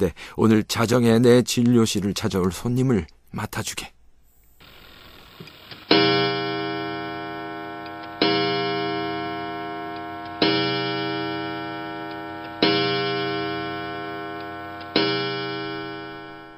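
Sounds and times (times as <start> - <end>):
speech: 0.0 - 4.0
clock striking midnight: 5.8 - 16.5.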